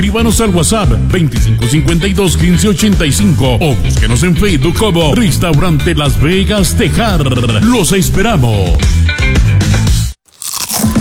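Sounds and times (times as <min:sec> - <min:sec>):
speech: 0:00.0 - 0:09.4
potato chips bitten and chewed: 0:10.3 - 0:10.9.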